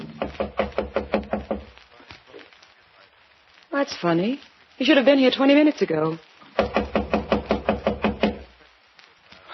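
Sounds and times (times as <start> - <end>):
firm knocks on an unlocked door: 0.1 - 1.7, 6.6 - 8.4
speech: 3.9 - 6.8.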